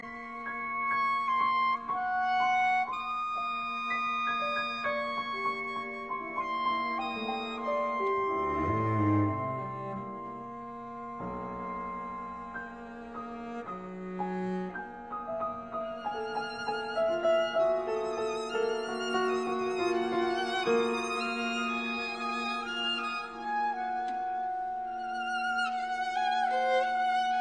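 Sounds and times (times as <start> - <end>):
cello in a slow chamber quartet: 0.0 - 27.3
clarinet in a slow chamber quartet: 0.0 - 27.3
piano in a slow chamber quartet: 0.0 - 27.3
violin in a slow chamber quartet: 0.0 - 27.3.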